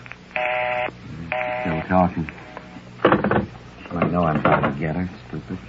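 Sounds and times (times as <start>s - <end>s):
electronic tones of a telephone being dialed: 0.4s - 1.9s
people talking: 1.1s - 2.4s, 3.9s - 5.6s.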